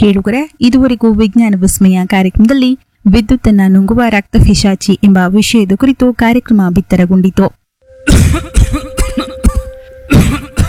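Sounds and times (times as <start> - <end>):
speech: 0.0 - 8.8
man coughing deeply and chestily: 8.0 - 10.6.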